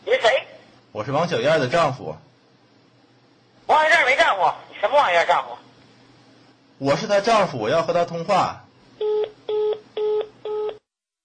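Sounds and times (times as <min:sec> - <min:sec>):
speech: 0:01.0 - 0:02.3, 0:04.4 - 0:05.6, 0:06.8 - 0:08.6
short electronic telephone keypad tones: 0:09.0 - 0:10.8.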